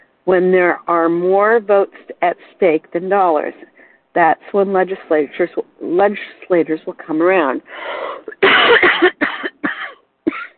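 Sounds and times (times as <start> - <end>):
speech: 0.3 - 9.4
harsh rasping coughing fit: 8.3 - 10.5.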